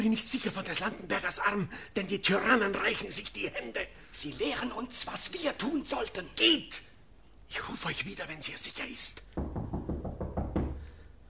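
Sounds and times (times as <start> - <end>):
speech: 0.0 - 6.9, 7.5 - 9.6
knocking on a door: 9.4 - 11.0.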